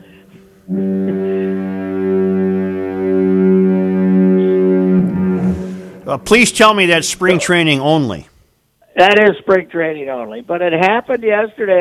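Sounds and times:
deep two-toned foghorn blast: 0.0s - 7.7s
speech: 0.7s - 0.9s, 6.1s - 8.3s, 9.0s - 11.8s.

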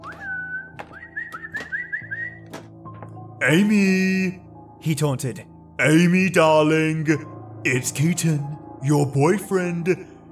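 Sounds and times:
man whistling as if calling a dog: 0.0s - 2.5s
speech: 3.4s - 10.1s.

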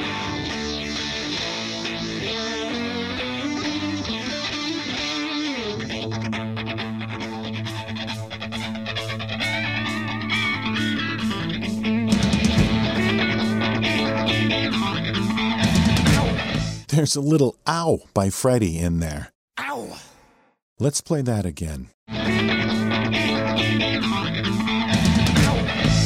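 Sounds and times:
electric guitar playing overdriven chords on a song chorus: 0.0s - 16.7s, 22.1s - 26.0s
speech: 17.0s - 19.4s, 20.8s - 22.6s.

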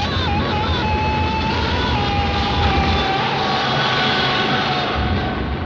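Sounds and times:
drawn-out film scream: 0.0s - 5.5s.

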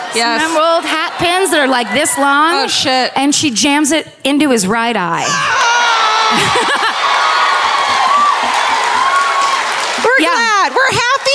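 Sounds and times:
laughter: 0.0s - 3.0s, 5.5s - 9.4s
large live crowd cheering: 0.0s - 3.2s, 5.3s - 11.3s
speech: 0.2s - 6.9s
high whoops and shouts: 5.2s - 9.8s
live audience clapping: 6.3s - 11.3s.

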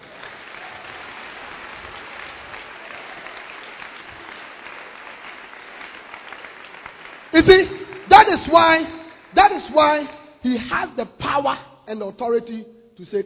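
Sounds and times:
audience at a church conference clapping their hands: 0.0s - 10.2s
speech: 7.3s - 13.2s.

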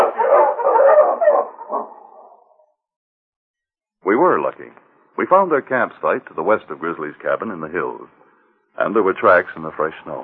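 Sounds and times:
several sled dogs barking and yelping: 0.0s - 2.6s
speech: 4.2s - 8.2s, 8.8s - 10.2s.

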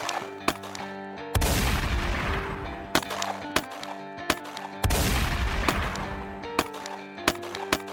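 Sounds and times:
gunshots cracking in an exchange of gunfire: 0.0s - 7.9s
heavy rumbling gunfire volleys: 1.4s - 3.8s, 4.8s - 6.7s.

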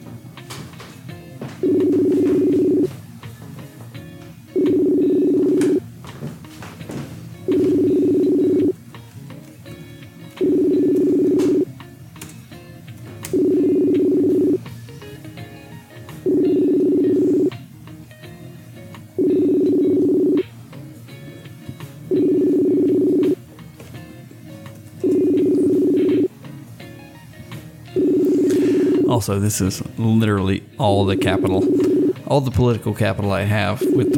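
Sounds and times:
outgoing Facebook call electronic ringback tone: 1.6s - 2.9s, 4.5s - 5.8s, 7.4s - 8.8s, 10.4s - 11.7s, 13.3s - 14.7s, 16.2s - 17.5s, 19.2s - 20.5s, 22.1s - 23.4s, 25.0s - 26.3s, 28.0s - 29.1s, 31.1s - 32.2s, 33.8s - 34.1s
speech: 29.2s - 34.1s.

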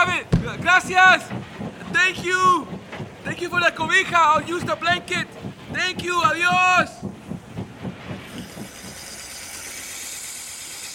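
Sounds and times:
heavy train wheels clacking: 0.0s - 10.9s
speech: 0.9s - 7.1s
train air brakes hissing: 8.3s - 10.9s.

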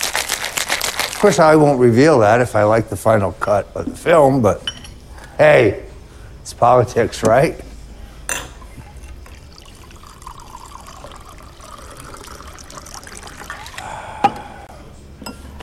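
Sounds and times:
speech: 1.2s - 4.7s, 5.4s - 7.7s
soft glass clink: 4.6s - 5.0s, 8.3s - 9.1s, 15.2s - 15.6s
martini pouring into a glass: 8.6s - 14.1s.

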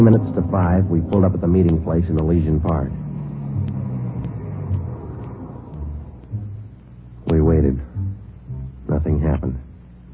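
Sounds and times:
speech: 0.0s - 3.1s
faint ticking clicks: 0.0s - 7.4s
car engine rumbling as the vehicle moves off: 0.0s - 8.8s.

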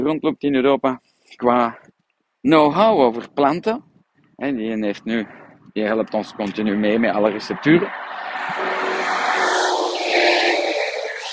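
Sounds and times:
speech: 0.0s - 8.7s
train rumbling past: 6.9s - 11.3s.

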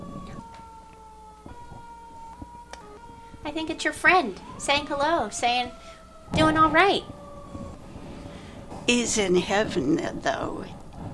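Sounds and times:
fire engine siren: 0.0s - 11.1s
speech: 3.5s - 7.2s, 8.9s - 10.8s
low rumble of the surroundings: 6.1s - 11.1s.

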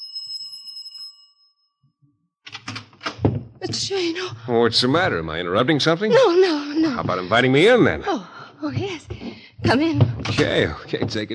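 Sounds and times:
doorbell chime: 0.0s - 1.9s
speech: 3.8s - 11.3s.

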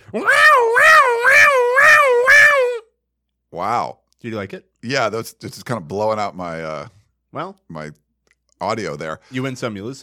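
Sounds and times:
voice imitating an emergency siren: 0.0s - 2.8s
speech: 0.1s - 0.4s, 3.6s - 8.0s, 8.6s - 10.0s.

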